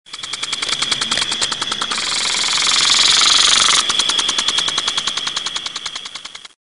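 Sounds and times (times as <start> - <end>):
water sprinkler: 0.1 - 6.6.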